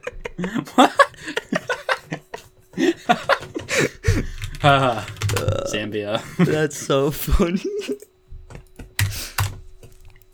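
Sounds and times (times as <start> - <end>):
laughter: 0.0 - 8.1
speech: 0.4 - 1.4, 4.6 - 5.1, 5.7 - 8.0
typing on a computer keyboard: 3.4 - 5.8, 8.5 - 10.1.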